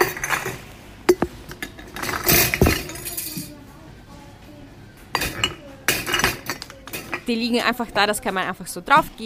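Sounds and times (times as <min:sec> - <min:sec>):
glass jars clinking while being weighed on a scale: 0:00.0 - 0:03.5, 0:05.2 - 0:07.3
handling noise of jars being weighed and labeled: 0:00.0 - 0:03.5
speech: 0:07.3 - 0:09.2.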